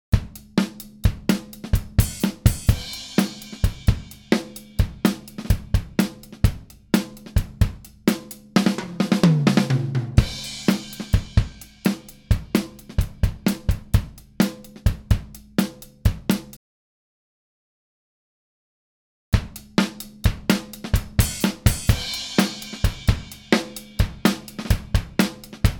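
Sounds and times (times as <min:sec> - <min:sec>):
drums: 0:00.0 - 0:16.6, 0:19.4 - 0:25.7.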